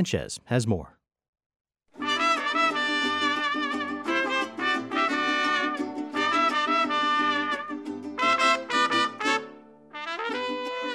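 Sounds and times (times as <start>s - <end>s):
speech: 0.0s - 1.0s
mariachi music played by a high school student group: 2.0s - 10.9s.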